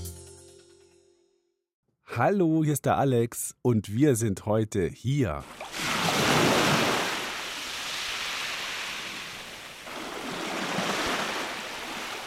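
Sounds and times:
speech: 0:02.2 - 0:06.5
ocean waves rolling in and washing out at the seaside: 0:05.4 - 0:12.2.

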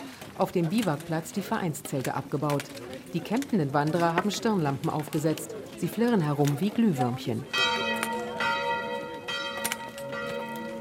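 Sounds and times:
speech: 0:00.4 - 0:07.8
church bells ringing: 0:06.3 - 0:10.7.

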